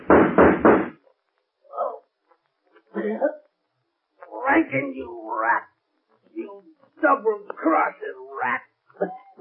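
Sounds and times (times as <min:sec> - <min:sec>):
gunshots: 0:00.0 - 0:01.0
thuds: 0:00.0 - 0:01.0
speech: 0:03.0 - 0:03.4, 0:04.6 - 0:05.8, 0:06.4 - 0:09.2.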